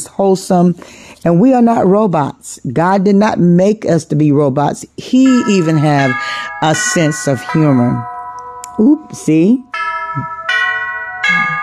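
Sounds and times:
speech: 0.1 - 8.1, 8.8 - 10.4
bell chiming ding-dong: 5.2 - 11.6.

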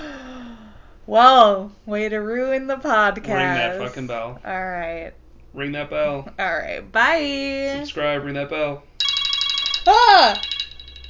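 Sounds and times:
speech: 1.1 - 8.9, 9.8 - 10.5
phone alarm beeping: 9.0 - 11.0.

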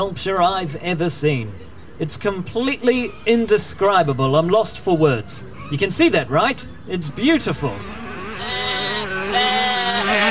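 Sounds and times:
speech: 0.0 - 8.6
sheep bleating loudly: 7.8 - 10.2.

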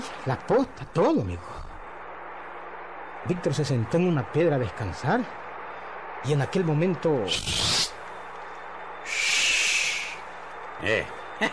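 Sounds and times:
speech: 0.2 - 1.7, 3.2 - 5.4, 6.2 - 7.9, 10.8 - 11.5
barn owl screeches: 7.3 - 8.0, 9.0 - 10.3.

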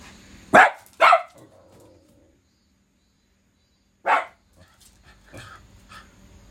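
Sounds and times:
dog barking at a passerby: 0.5 - 1.8, 4.0 - 4.4
dog yipping softly: 4.1 - 4.4.

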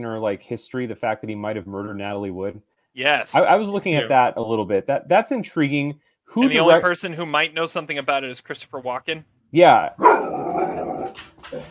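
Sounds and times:
speech: 0.0 - 10.2
dog growling in a low rumble: 10.0 - 11.6.

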